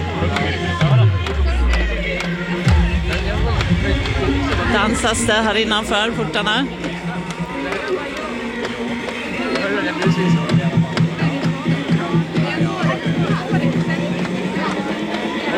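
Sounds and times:
crowd cheering and shouting as graduating students run out: 0.0s - 15.5s
music: 0.0s - 15.5s
speech: 0.2s - 0.8s, 4.8s - 6.9s, 9.9s - 10.5s
steady musical drone: 0.8s - 10.6s.

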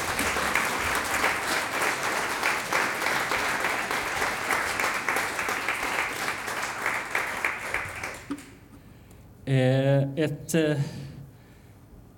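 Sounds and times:
audience applause: 0.0s - 8.6s
speech: 9.5s - 11.0s.

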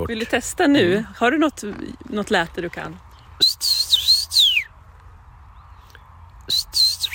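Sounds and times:
speech: 0.1s - 3.8s
person whistling an imitation of a common rosefinch call: 3.4s - 4.7s, 6.4s - 7.1s.

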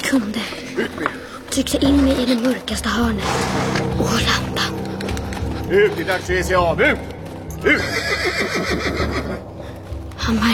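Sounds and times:
speech: 0.1s - 4.6s, 5.7s - 9.5s, 10.3s - 10.5s
horse neighing in a cave: 7.6s - 9.4s.

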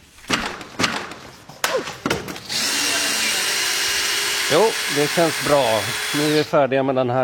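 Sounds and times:
wooden bangs and knocks from tearing down a wooden election pavilion: 0.2s - 2.6s
power drill whining while tearing down a wooden election pavilion: 2.4s - 6.6s
speech: 4.5s - 7.2s.

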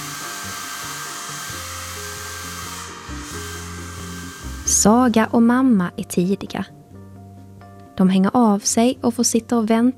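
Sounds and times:
hair dryer hissing and whirring: 0.0s - 5.2s
faint music with shifting low notes: 0.0s - 9.9s
speech: 4.7s - 6.8s, 8.0s - 9.9s.

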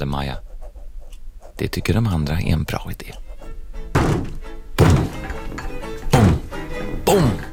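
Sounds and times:
speech: 0.0s - 0.5s, 1.6s - 3.2s
heavy thuds of someone jumping on the floor: 4.0s - 5.4s, 6.1s - 6.6s.

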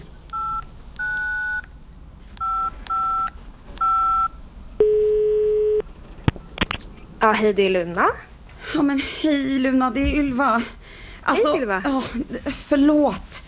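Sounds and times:
phone number dialed on a touch-tone keypad: 0.3s - 1.6s, 2.4s - 5.8s
steady low telephone tone: 0.4s - 1.7s, 2.4s - 6.4s
speech: 7.2s - 13.3s.

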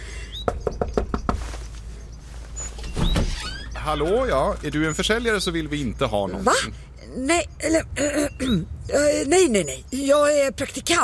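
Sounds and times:
faint bird chirps outdoors: 0.0s - 10.6s
firm knocks on a wooden door: 0.5s - 1.5s
speech: 3.9s - 11.0s.

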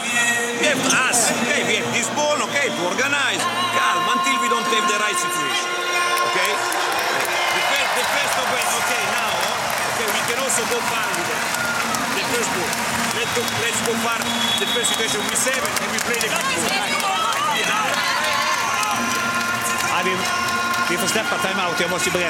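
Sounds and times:
loud music blaring over an arena sound system: 0.0s - 22.2s
speech: 0.7s - 7.4s, 8.0s - 19.2s, 19.9s - 22.2s
packed indoor arena crowd cheering and clapping: 0.9s - 22.2s.

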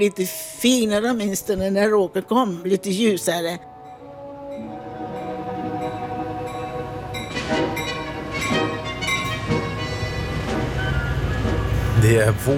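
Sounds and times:
speech: 0.0s - 3.7s, 12.0s - 12.5s
train arriving at the station in Siracusa, Italy: 3.1s - 12.5s.

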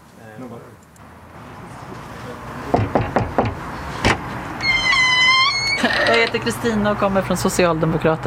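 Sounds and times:
speech: 0.4s - 0.9s, 6.3s - 8.2s
front door opening with knocks and clunks from latch and frame: 2.8s - 6.7s.

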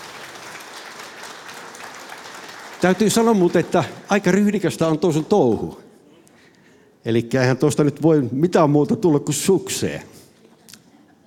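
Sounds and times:
audience applause at a Finnish singing event: 0.0s - 5.6s
speech: 2.8s - 5.8s, 7.0s - 10.2s.

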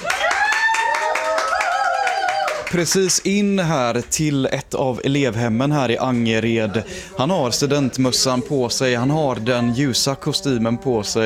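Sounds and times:
rhythmic clapping at a graduation celebration: 0.0s - 3.6s
speech: 2.7s - 11.2s.

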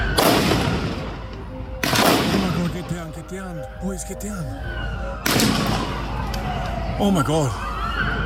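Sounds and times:
gunshots with lingering echo: 0.2s - 1.0s, 1.8s - 2.8s, 5.2s - 5.9s
speech: 3.4s - 8.1s.

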